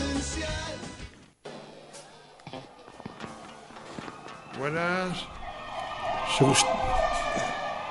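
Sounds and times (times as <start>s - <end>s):
ambulance siren wailing: 3.4s - 7.9s
speech: 6.4s - 6.9s.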